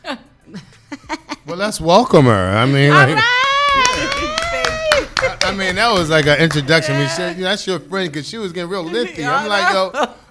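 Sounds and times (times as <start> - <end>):
speech: 1.5 - 3.4, 5.6 - 10.2
people clapping: 3.4 - 7.3
laughter: 3.7 - 7.4.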